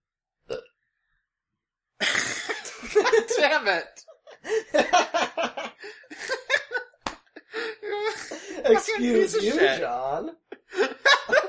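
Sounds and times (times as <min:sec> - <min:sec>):
person burping: 0:00.4 - 0:00.8, 0:02.0 - 0:02.8
laughter: 0:02.6 - 0:11.4
speech: 0:03.6 - 0:05.7, 0:08.6 - 0:10.4.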